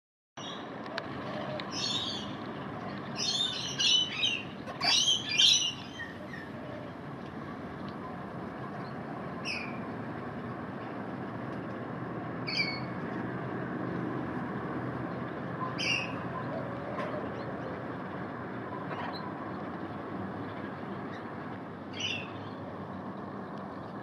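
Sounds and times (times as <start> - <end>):
steady background hum: 0.4 - 24.0
Australian king parrot chirping on a terrace: 3.2 - 6.5.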